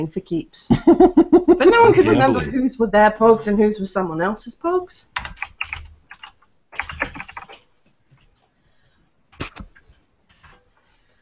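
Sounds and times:
speech: 0.0 - 5.4
laughter: 0.8 - 2.5
rapid typing on a computer keyboard: 5.2 - 8.3.

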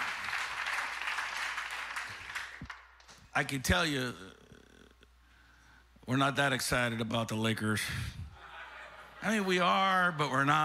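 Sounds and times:
audience clapping hands: 0.0 - 3.2
speech: 3.4 - 4.4, 6.1 - 8.2, 9.2 - 10.6
laughter: 8.3 - 9.8.

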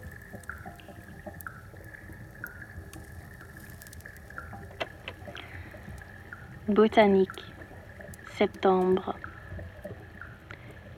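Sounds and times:
rainwater trickling and gurgling into the sewers: 0.0 - 10.9
soft drips: 0.0 - 10.9
speech: 6.7 - 7.5, 8.4 - 9.2.

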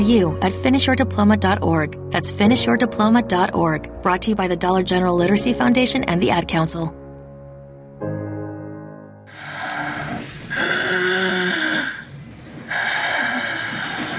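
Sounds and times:
speech: 0.0 - 7.0
loud snoring with rasping snorts: 9.3 - 14.1.

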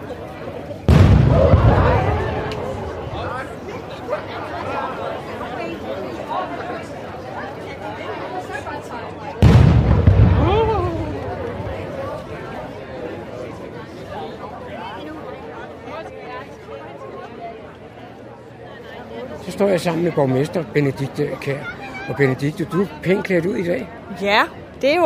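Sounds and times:
crowd chattering: 0.0 - 25.0
booming cannon shots from a ceremonial salute: 0.9 - 3.6, 9.4 - 12.2
speech: 19.6 - 25.0.

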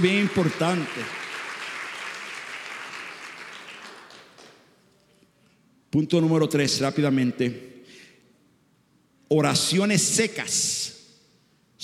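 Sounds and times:
speech: 0.0 - 1.2, 5.9 - 7.8, 9.3 - 11.0
congregation applauding loudly: 0.0 - 4.7.

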